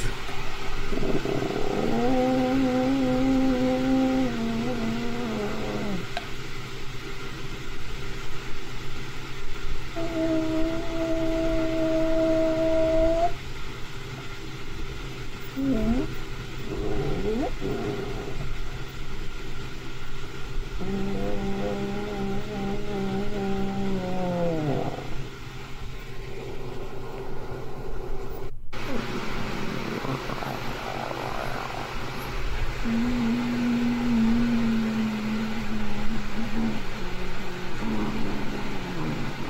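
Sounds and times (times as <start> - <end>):
steady outdoor rumble: 0.0 - 39.4
purported Sasquatch growling moans outside a tent: 0.9 - 6.2, 10.0 - 13.4, 15.6 - 18.8, 20.8 - 25.3, 28.8 - 39.4.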